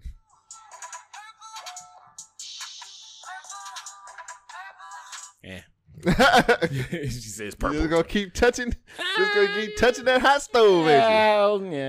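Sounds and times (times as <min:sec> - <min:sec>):
song played through a small phone speaker: 0:00.0 - 0:05.4, 0:09.2 - 0:11.1
speech: 0:05.4 - 0:11.8.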